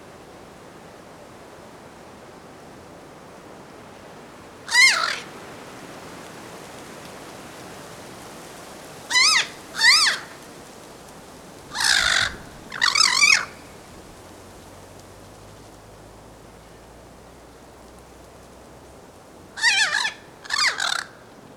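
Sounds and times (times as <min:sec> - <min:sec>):
faint background noise: 0:00.0 - 0:21.5
harsh wavering bird squawks: 0:04.7 - 0:05.3, 0:09.1 - 0:10.4, 0:11.7 - 0:13.7, 0:19.6 - 0:21.2.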